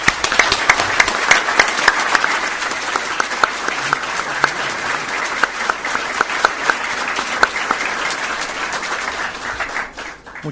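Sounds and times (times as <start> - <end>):
audience applause: 0.0 - 10.5.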